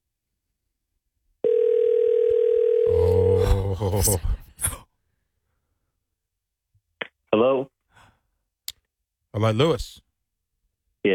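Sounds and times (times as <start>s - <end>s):
outgoing phone call electronic ringing tone: 1.4s - 2.9s
speech: 3.8s - 4.4s, 9.4s - 10.0s.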